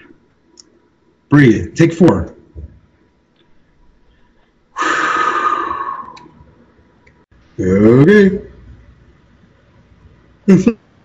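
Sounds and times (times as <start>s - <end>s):
speech: 1.3s - 2.3s, 10.5s - 10.7s
person yawning: 4.8s - 6.4s.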